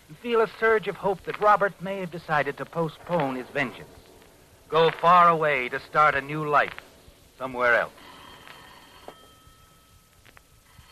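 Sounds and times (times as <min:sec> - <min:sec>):
speech: 0:00.2 - 0:04.0, 0:04.7 - 0:08.0
telephone ringing with a steady electronic tone: 0:08.0 - 0:10.0.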